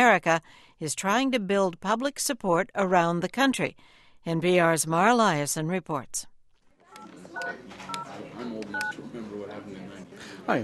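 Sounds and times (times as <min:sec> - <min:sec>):
speech: 0:00.0 - 0:06.3, 0:07.0 - 0:10.6
murmur of many people talking at a phone bank: 0:06.8 - 0:10.6
touch-tone telephone dialing beeps at a phone bank: 0:08.7 - 0:09.0.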